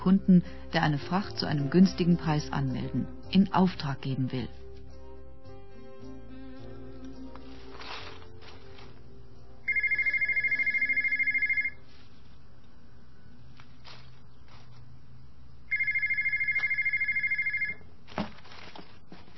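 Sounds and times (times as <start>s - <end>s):
speech: 0.0s - 4.6s
telephone ringing at a German freight forwarding company: 9.7s - 11.8s, 15.7s - 17.9s.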